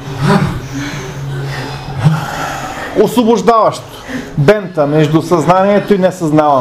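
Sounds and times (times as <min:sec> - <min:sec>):
deep forceful breaths: 0:00.0 - 0:03.1
low steady hum: 0:00.0 - 0:06.5
speech: 0:03.0 - 0:06.5.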